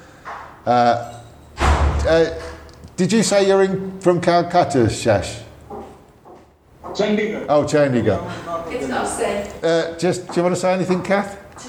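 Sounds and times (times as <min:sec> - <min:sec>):
speech: 0:00.6 - 0:01.2, 0:02.0 - 0:05.4, 0:07.0 - 0:11.6
brief tonal door creak: 0:00.8 - 0:02.8
front door opening and closing: 0:01.1 - 0:02.7.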